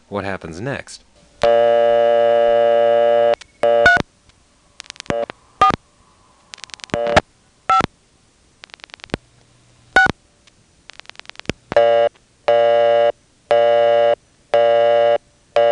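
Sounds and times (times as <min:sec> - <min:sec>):
speech: 0:00.1 - 0:02.4
steady payphone telephone tone: 0:01.4 - 0:04.0, 0:04.8 - 0:05.8, 0:06.5 - 0:07.9, 0:11.8 - 0:15.6
clicks and short bursts on a payphone line: 0:04.8 - 0:05.8, 0:06.4 - 0:07.9, 0:08.6 - 0:09.2, 0:10.0 - 0:12.2.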